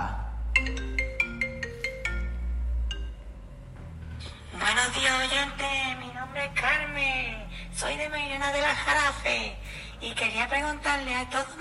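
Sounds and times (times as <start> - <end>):
telephone electronic ringtone for an incoming call: 0.6 - 3.2
speech: 4.9 - 11.6.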